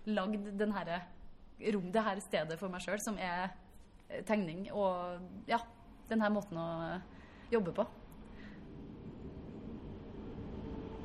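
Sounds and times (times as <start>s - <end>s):
speech: 0.0s - 8.0s
train passing: 8.0s - 11.0s.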